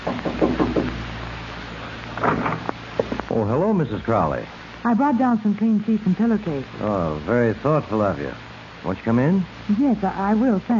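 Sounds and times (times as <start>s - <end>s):
woman knocking on the wooden door of a cabin: 0.0s - 1.0s
low steady hum: 0.0s - 10.7s
speech: 3.4s - 10.7s.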